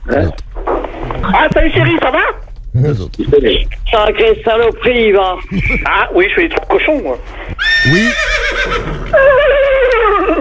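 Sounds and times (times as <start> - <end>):
speech: 0.1 - 0.4, 1.6 - 8.3
mare neighing: 7.6 - 10.3.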